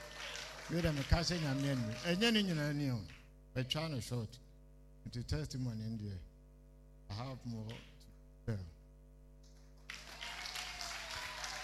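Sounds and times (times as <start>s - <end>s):
crowd applauding: 0.0s - 2.7s, 9.8s - 11.6s
speech: 0.7s - 4.4s, 5.0s - 6.3s, 7.1s - 7.9s, 8.5s - 8.8s.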